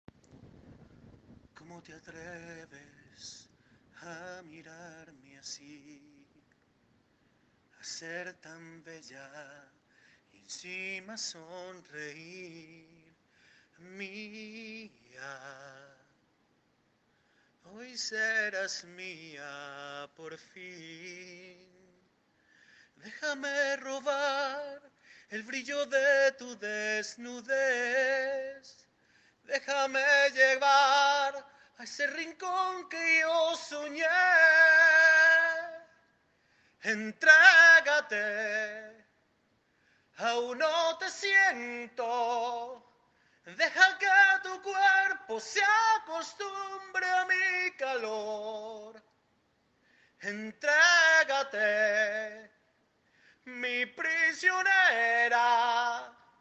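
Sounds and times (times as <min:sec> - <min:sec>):
man singing with vibrato: 0:01.6 - 0:06.5, 0:07.7 - 0:16.1, 0:17.6 - 0:22.1, 0:23.0 - 0:36.1, 0:36.8 - 0:39.2, 0:40.1 - 0:49.1, 0:50.2 - 0:52.7, 0:53.4 - 0:56.3.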